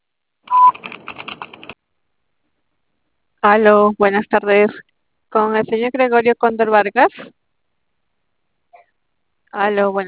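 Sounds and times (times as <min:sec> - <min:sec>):
telephone answering machine beep: 0:00.5 - 0:00.8
speech: 0:03.4 - 0:07.4, 0:09.5 - 0:10.0.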